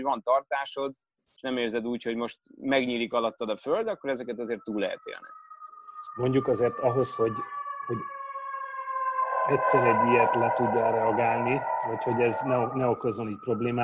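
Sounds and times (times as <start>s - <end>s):
speech: 0.0s - 5.4s, 6.1s - 8.2s, 9.5s - 13.8s
ambulance siren wailing outside: 4.0s - 13.8s.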